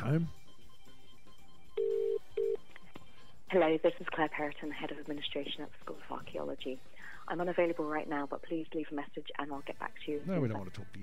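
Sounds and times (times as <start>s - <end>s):
speech: 0.0s - 0.4s, 3.5s - 11.0s
buzzy double-ring telephone tone through a handset: 1.8s - 2.6s.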